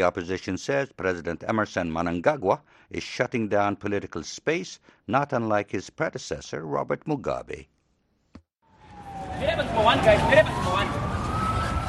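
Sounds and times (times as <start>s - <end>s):
speech: 0.0s - 7.8s, 9.4s - 11.1s
police siren wailing: 8.6s - 11.8s
outdoor traffic rumble: 8.7s - 11.8s.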